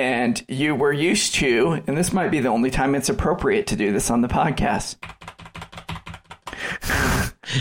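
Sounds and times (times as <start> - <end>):
speech: 0.0 - 5.3
rapid typing on a squishy dome computer keyboard: 5.0 - 6.8.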